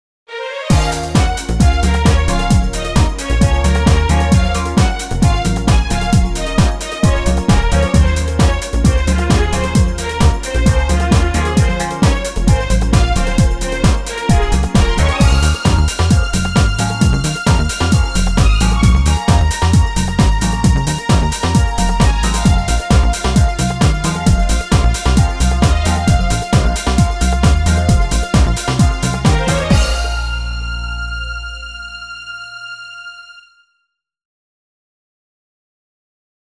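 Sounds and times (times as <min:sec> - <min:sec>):
pop music: 0:00.7 - 0:32.5.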